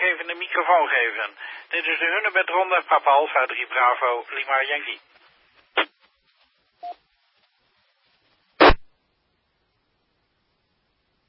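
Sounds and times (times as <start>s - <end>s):
radio static hiss on an open channel: 0.0s - 6.1s, 7.9s - 8.8s
speech: 0.2s - 5.2s, 5.8s - 6.0s
short harsh bursts of radio noise: 8.6s - 8.8s.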